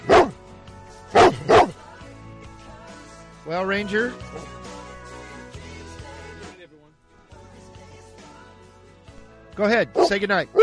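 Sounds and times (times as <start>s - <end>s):
dog barking: 0.0s - 0.4s, 1.1s - 1.8s, 9.9s - 10.6s
speech: 3.4s - 4.6s, 9.6s - 10.6s.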